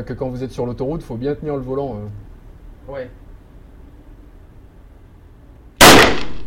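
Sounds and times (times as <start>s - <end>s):
speech: 0.0s - 2.3s, 2.9s - 3.2s
gunshot fired at a target on a shooting range: 5.8s - 6.4s.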